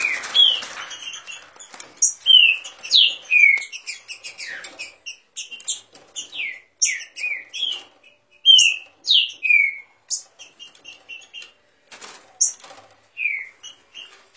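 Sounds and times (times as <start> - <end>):
green-winged saltator warming up its song with chips and whistles: 0.0 - 11.4.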